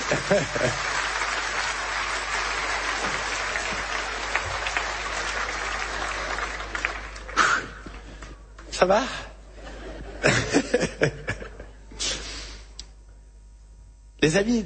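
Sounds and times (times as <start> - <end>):
laughter: 0.0 - 6.8, 9.5 - 11.9
room full of people applauding: 0.0 - 8.2
speech: 0.1 - 1.0, 8.8 - 9.3, 14.2 - 14.6.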